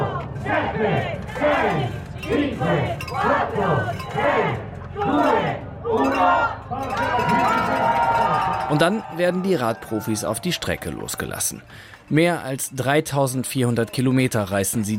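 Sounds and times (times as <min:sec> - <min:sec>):
large crowd shouting a countdown at a cycling stage start: 0:00.0 - 0:10.2
crowd cheering at a cycling stage start: 0:00.0 - 0:11.5
speech: 0:00.4 - 0:08.0, 0:08.7 - 0:14.9.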